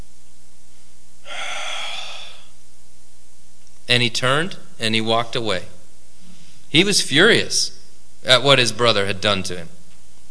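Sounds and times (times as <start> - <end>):
faint low hum: 0.0 - 10.3
person breathing in sharply: 1.3 - 2.6
speech: 3.9 - 5.7, 6.7 - 9.8.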